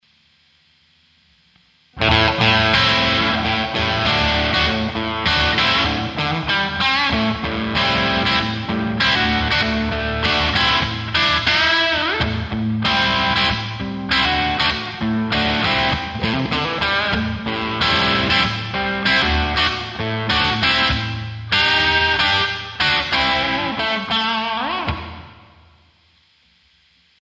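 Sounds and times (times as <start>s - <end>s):
Fender overdriven blues electric guitar on humbucker bridge pickup: 2.0s - 25.7s.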